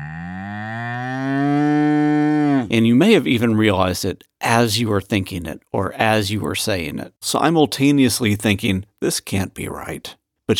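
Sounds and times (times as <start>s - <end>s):
cow mooing: 0.0s - 2.7s
speech: 2.7s - 10.5s.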